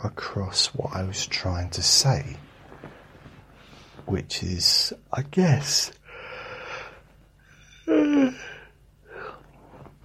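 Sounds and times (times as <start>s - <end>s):
speech: 0.0s - 2.5s, 4.0s - 6.0s
soft breathing: 2.4s - 4.1s, 6.0s - 10.0s
tired man yawning: 7.8s - 8.7s.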